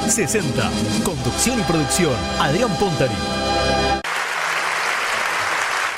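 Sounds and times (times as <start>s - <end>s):
speech: 0.2s - 3.5s
audience applause at a music program: 4.0s - 5.9s.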